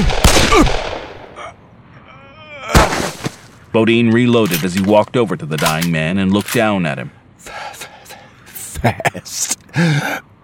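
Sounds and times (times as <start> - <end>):
revolver gunshots in a Western gunfight: 0.0 - 1.4
speech: 3.7 - 7.8, 8.8 - 10.3.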